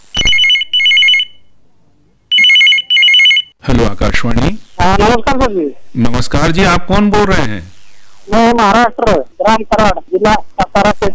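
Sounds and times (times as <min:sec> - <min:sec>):
telephone ringing with a trilling electronic tone: 0:00.2 - 0:01.5, 0:02.3 - 0:03.6
speech: 0:03.8 - 0:07.7, 0:08.3 - 0:11.1.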